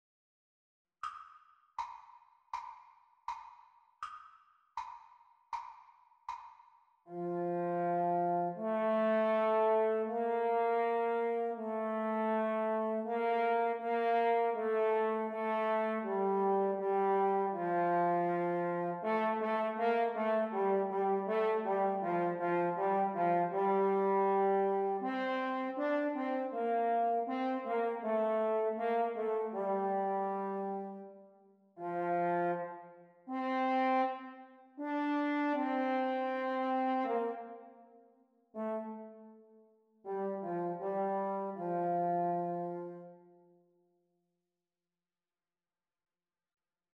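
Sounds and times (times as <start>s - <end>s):
French horn duet playalong at exam speeds: 7.1s - 31.2s, 31.8s - 37.8s, 38.5s - 43.3s.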